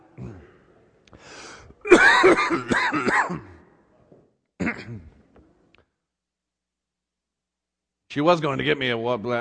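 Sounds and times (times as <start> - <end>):
person clearing throat: 0.0 - 0.6, 1.8 - 3.8, 4.6 - 5.3
person coughing in a coughing fit: 1.8 - 3.7, 4.6 - 5.2
speech: 1.9 - 3.5, 8.2 - 9.3.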